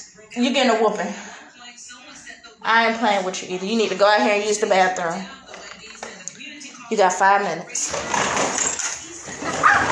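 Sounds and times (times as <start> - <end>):
speech: 0.3 - 1.3, 2.6 - 5.4, 6.9 - 8.1
dogs barking outside at another dog: 9.5 - 9.9.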